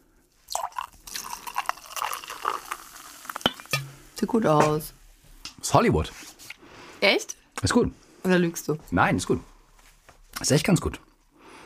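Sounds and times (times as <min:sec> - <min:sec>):
sparkling wine poured into a hot pan to deglaze: 0:00.5 - 0:04.2
speech: 0:04.2 - 0:05.0, 0:05.6 - 0:06.2, 0:07.0 - 0:09.5, 0:10.4 - 0:11.1.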